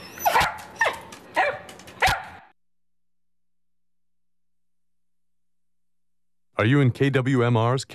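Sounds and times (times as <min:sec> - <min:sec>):
dog barking: 0:00.2 - 0:02.5
speech: 0:06.6 - 0:07.9.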